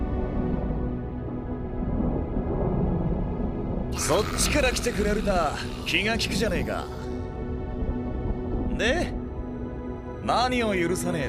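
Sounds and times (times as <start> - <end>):
deep rumble of thunder: 0.1 - 8.7
speech: 4.1 - 7.1, 8.8 - 9.2, 10.3 - 11.2.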